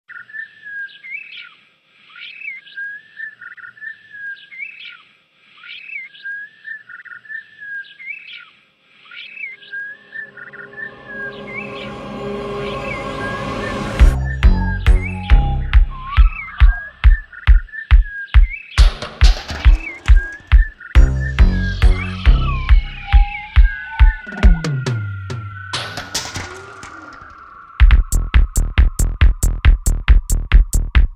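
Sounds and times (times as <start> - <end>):
psytrance music with bending bird beats: 9.8 - 17.3, 18.8 - 31.1.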